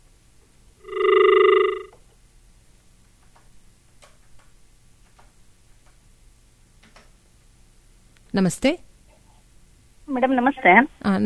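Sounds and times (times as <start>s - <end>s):
telephone ringing with an incoming call: 0.8s - 2.0s
speech: 8.4s - 8.9s, 10.2s - 11.2s.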